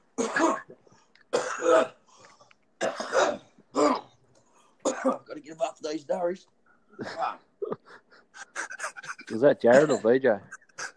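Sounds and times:
person clearing throat: 0.2 - 2.0, 2.8 - 4.2, 4.8 - 5.3, 9.1 - 10.1
person coughing: 0.2 - 2.0, 2.8 - 4.1, 4.8 - 5.3, 8.6 - 10.9
speech: 1.7 - 1.9, 6.1 - 7.4, 9.3 - 10.5.

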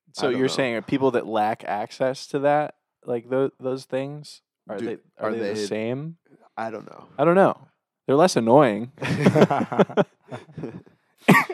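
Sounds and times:
speech: 0.2 - 11.5
laughter: 4.8 - 5.7, 9.0 - 11.5
person coughing into the microphone: 10.4 - 11.5.

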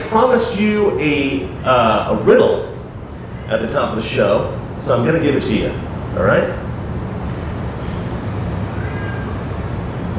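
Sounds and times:
constant low rumbling hum: 0.0 - 10.1
speech: 0.1 - 2.7, 3.5 - 6.6
cat meowing faintly: 8.6 - 9.7.

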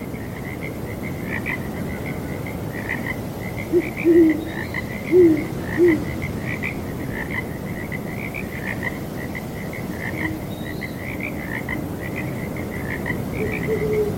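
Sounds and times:
breezy night wind: 0.0 - 14.1
frogs croaking in a steady pulsing chorus at night: 0.0 - 14.1
owls hooting at night: 3.7 - 6.1, 13.4 - 14.1.

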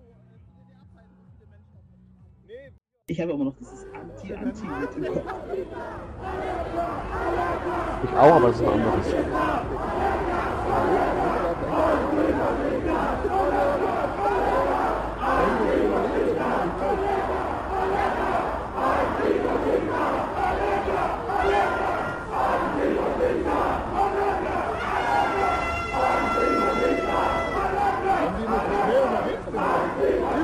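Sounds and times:
speech: 3.1 - 13.1
large crowd chanting in unison at a street protest march: 3.8 - 30.4
laughter: 4.2 - 6.9.

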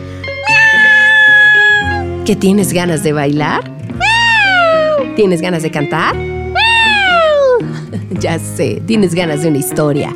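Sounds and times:
long cat meow: 0.4 - 2.0, 4.0 - 5.1, 6.6 - 7.6
speech: 2.3 - 3.7, 5.2 - 6.3, 8.1 - 10.1.

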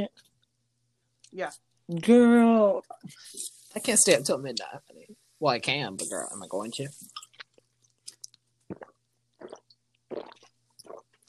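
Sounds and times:
speech: 0.0 - 0.3, 1.3 - 7.2
chewing gum: 7.0 - 11.2.

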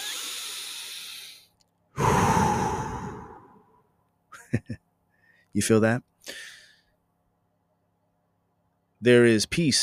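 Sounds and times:
person taking a deep breath: 0.0 - 3.8
speech: 5.6 - 6.5, 9.0 - 9.8.

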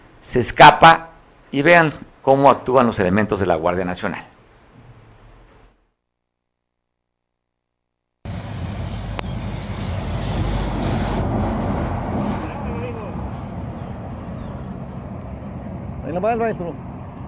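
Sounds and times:
speech: 0.2 - 4.3, 16.3 - 16.9
bus engine rumbling while pulling away from a checkpoint: 8.3 - 17.2.

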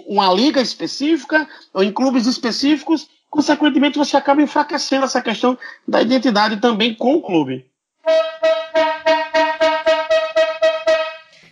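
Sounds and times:
speech: 0.1 - 8.6
bright brassy horn tooting: 8.1 - 11.4.

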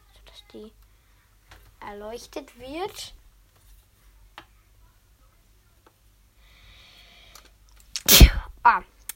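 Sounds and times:
speech: 0.5 - 0.8, 1.8 - 3.2, 8.6 - 8.9
person sneezing: 8.0 - 8.5.

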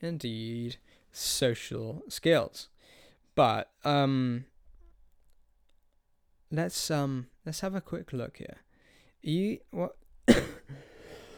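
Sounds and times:
speech: 0.0 - 2.7, 3.4 - 4.5, 6.5 - 8.6, 9.2 - 10.9
person coughing: 10.3 - 11.0.

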